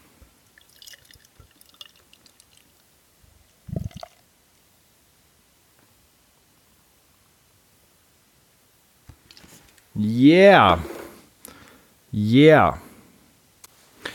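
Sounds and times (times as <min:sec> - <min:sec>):
canned beer pouring into a glass: 0:00.4 - 0:02.9, 0:03.7 - 0:04.3
speech: 0:10.0 - 0:10.9, 0:12.2 - 0:12.8.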